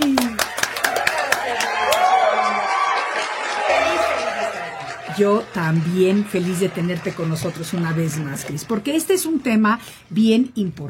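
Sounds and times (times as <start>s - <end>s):
small audience applause welcoming a guest: 0.0s - 8.6s
speech: 5.2s - 10.8s.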